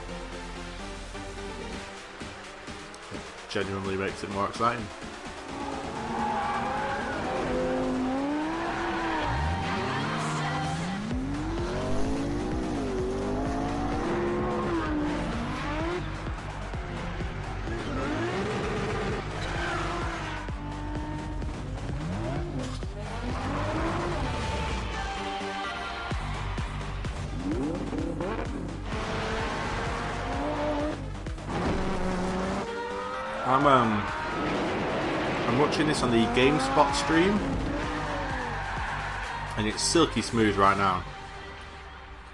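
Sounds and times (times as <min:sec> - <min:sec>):
speech: 0:03.5 - 0:05.1, 0:36.0 - 0:37.6, 0:39.6 - 0:41.2
car engine roaring in a racing video game: 0:04.8 - 0:42.3
tires squealing and skidding in a racing video game: 0:05.3 - 0:21.4, 0:26.2 - 0:41.0.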